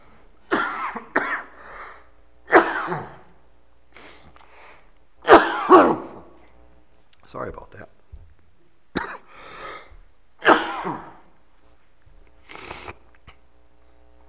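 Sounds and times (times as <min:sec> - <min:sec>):
person coughing: 0:00.5 - 0:03.4, 0:05.2 - 0:06.4, 0:09.0 - 0:11.3.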